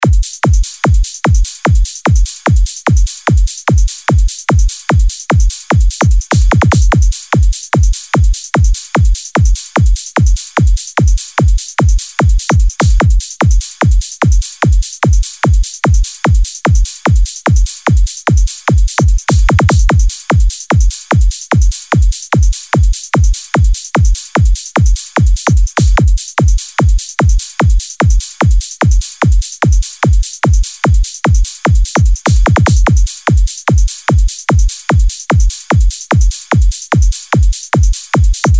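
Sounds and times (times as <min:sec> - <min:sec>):
90s dance drum loop: 0:00.0 - 0:38.5.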